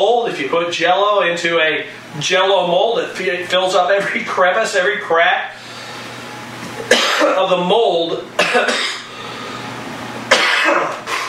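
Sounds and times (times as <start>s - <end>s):
speech: 0.0s - 5.7s, 6.8s - 8.9s
person giving a talk coughing harshly: 6.8s - 7.4s, 8.4s - 9.1s, 10.3s - 11.2s.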